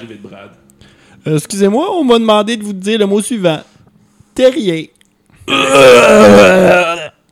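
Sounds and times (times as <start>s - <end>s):
speech: 0.0s - 3.7s, 4.4s - 7.0s
voice imitating vomiting with a gurgling retch: 5.4s - 7.3s.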